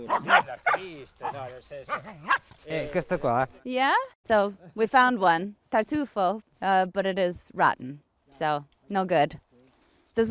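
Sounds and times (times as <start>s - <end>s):
truffle-hunting dog barking and yipping: 0.0s - 2.6s
speech: 0.0s - 9.5s.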